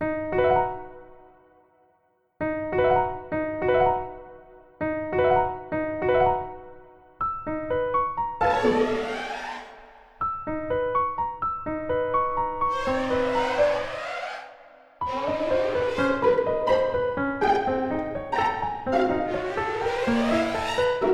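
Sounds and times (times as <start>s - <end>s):
piano: 0.0s - 1.8s, 2.4s - 21.1s
string orchestra: 8.4s - 9.6s, 15.0s - 21.1s.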